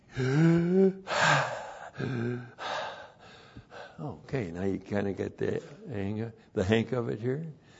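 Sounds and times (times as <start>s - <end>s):
deep inhale and exhale breathing: 0.0s - 4.2s, 7.6s - 7.7s
speech: 4.6s - 7.7s.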